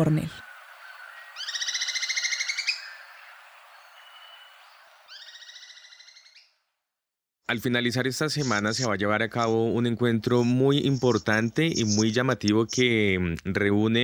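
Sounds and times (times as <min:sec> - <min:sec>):
speech: 0:00.0 - 0:00.4, 0:07.5 - 0:14.0
steady hiss of a field recording: 0:00.0 - 0:06.0
yellow bird rapid buzzy trilled calls: 0:00.3 - 0:06.5.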